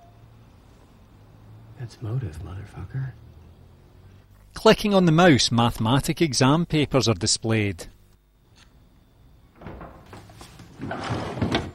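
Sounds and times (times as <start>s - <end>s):
speech: 1.8s - 3.3s, 4.6s - 8.0s
desk drawer sliding closed: 9.6s - 11.7s.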